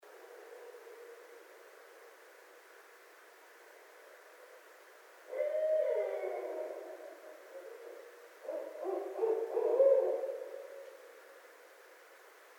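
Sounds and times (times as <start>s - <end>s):
barred owl hooting: 5.3s - 11.0s.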